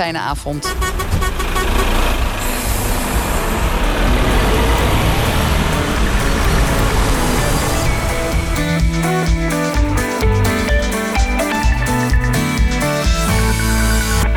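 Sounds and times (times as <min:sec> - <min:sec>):
speech: 0:00.0 - 0:02.0
heavy road noise of a car driving away: 0:00.1 - 0:12.3
loud car engine rumbling as the car drives away: 0:00.2 - 0:14.2
horn-like tones: 0:00.6 - 0:08.7.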